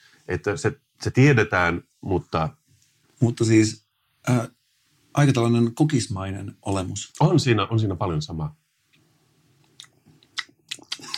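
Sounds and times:
speech: 0.3 - 2.6, 3.2 - 4.6, 5.2 - 8.6
wet lip smacking while tasting a cold cola-like drink: 9.6 - 11.1.

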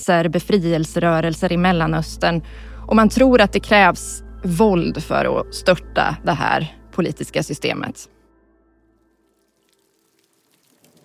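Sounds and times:
speech: 0.0 - 8.2
scattered drips: 9.2 - 11.0
heavy rain falling over an embassy compound in Stockholm: 10.0 - 11.0.

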